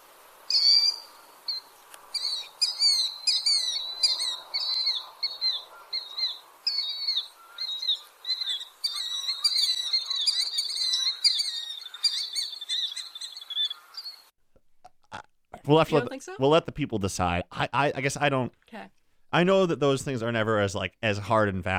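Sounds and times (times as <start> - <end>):
killdeer giving shrill high two-part calls: 0.5 - 14.3
speech: 15.7 - 21.7.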